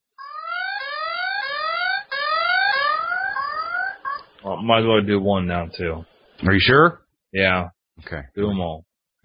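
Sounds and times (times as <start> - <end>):
electronic siren from a survival device whooping: 0.2 - 4.4
speech: 4.4 - 9.2.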